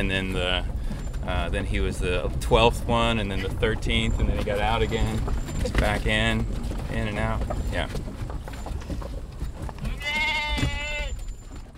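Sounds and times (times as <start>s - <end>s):
speech: 0.0s - 8.1s
low rumbling background: 0.0s - 11.7s
sheep bleating in a minivan: 9.8s - 11.2s.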